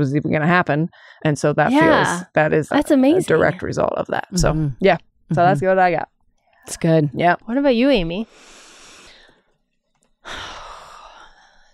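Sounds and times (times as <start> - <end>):
speech: 0.0 - 8.6, 10.2 - 10.6
big deep breath: 8.3 - 9.6, 10.2 - 11.7.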